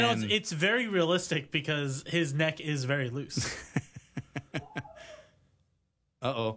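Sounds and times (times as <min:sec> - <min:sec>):
strained vocal cry: 0:00.0 - 0:00.4
speech: 0:00.0 - 0:03.7, 0:06.2 - 0:06.5
laughter: 0:03.3 - 0:05.2
sharp breathy gasps: 0:04.9 - 0:05.5.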